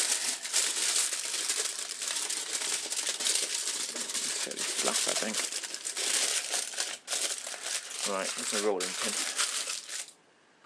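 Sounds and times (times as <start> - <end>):
silver foil crinkling as it is folded around veal: 0.0 - 10.2
speech: 8.1 - 9.3.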